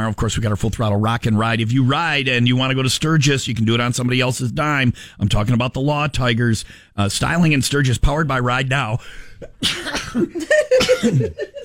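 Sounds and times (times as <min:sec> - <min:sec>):
speech: 0:00.0 - 0:11.6
person gasping between sneezes: 0:06.6 - 0:07.0, 0:09.0 - 0:09.6
laughter: 0:09.4 - 0:11.6
person sneezing: 0:09.6 - 0:11.4.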